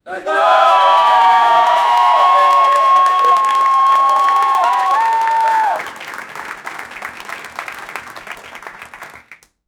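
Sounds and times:
studio audience erupting: 0.3s - 9.2s.

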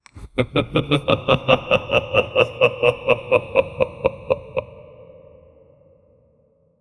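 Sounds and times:
creepy long laugh: 0.1s - 5.6s.

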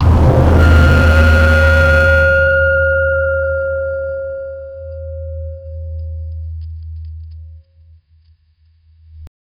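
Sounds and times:
hellish bell tolling: 0.0s - 5.9s.

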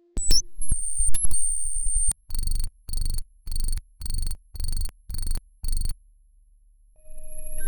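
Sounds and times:
gritty sci fi robot HUD powering on: 0.2s - 5.9s.

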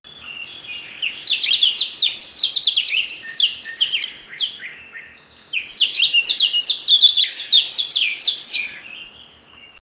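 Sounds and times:
bird twittering: 0.1s - 9.8s.

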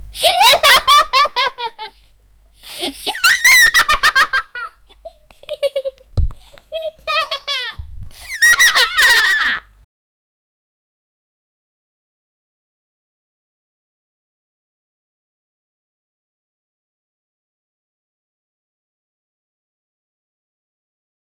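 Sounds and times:
children laughing softly: 0.1s - 2.0s, 2.6s - 9.7s.

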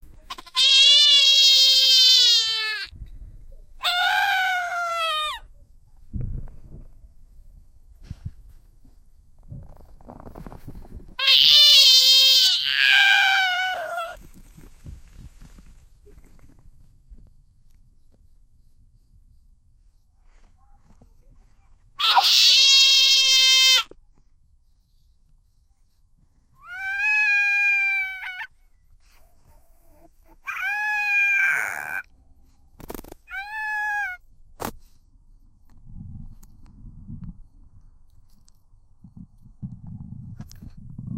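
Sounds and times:
monkey jumping and screaming: 0.4s - 2.9s, 3.8s - 5.4s, 11.2s - 14.2s, 22.0s - 23.8s, 26.7s - 28.5s, 30.4s - 32.0s, 33.3s - 34.2s.

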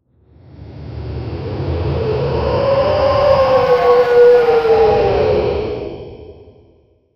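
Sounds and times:
T. rex roar: 1.9s - 5.8s.

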